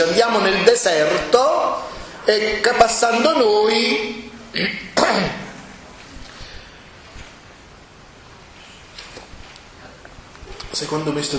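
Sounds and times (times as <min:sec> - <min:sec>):
speech: 0:00.0 - 0:01.6, 0:02.3 - 0:05.4, 0:10.8 - 0:11.3
rough cough with a throat-clearing quality: 0:04.5 - 0:05.6.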